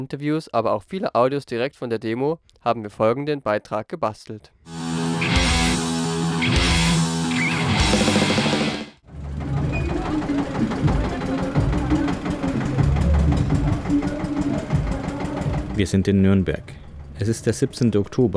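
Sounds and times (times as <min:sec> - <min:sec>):
speech: 0:00.0 - 0:04.8, 0:15.8 - 0:18.3
tractor engine starting up and moving off: 0:04.7 - 0:18.3.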